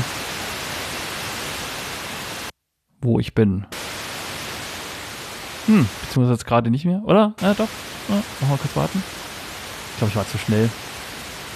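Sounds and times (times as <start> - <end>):
FM radio static hiss while turning the tuning dial: 0.0 - 2.5, 3.7 - 6.2, 7.4 - 11.5
speech: 3.0 - 3.8, 5.7 - 9.2, 10.0 - 10.9.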